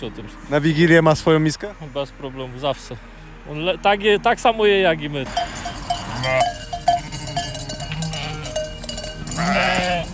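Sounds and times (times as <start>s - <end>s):
speech: 0.0s - 5.6s
bells ringing: 5.2s - 10.1s
flock of sheep bleating: 5.3s - 10.1s.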